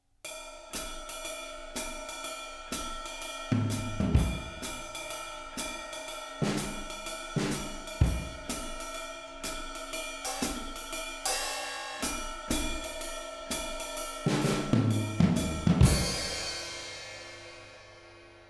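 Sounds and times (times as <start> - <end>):
four-piece drum kit playing: 3.5 - 4.9, 6.4 - 8.9, 10.3 - 18.2.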